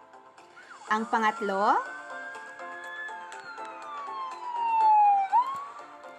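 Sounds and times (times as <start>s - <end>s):
speech: 0.9s - 2.0s
ambulance siren wailing: 1.6s - 6.1s.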